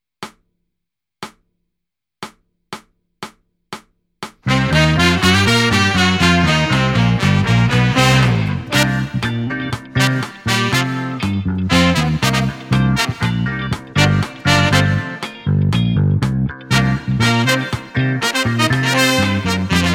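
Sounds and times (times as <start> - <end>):
backing track: 4.4 - 19.9.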